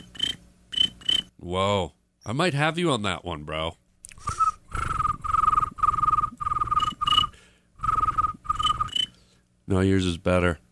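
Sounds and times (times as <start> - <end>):
speech: 1.4 - 4.3, 9.7 - 10.6
person mimicking a cricket with their voice: 4.2 - 9.1.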